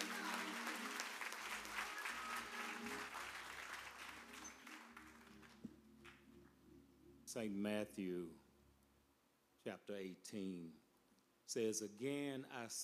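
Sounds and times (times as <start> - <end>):
audience applauding: 0.0 - 6.2
speech: 7.3 - 8.4, 9.6 - 10.8, 11.5 - 12.8.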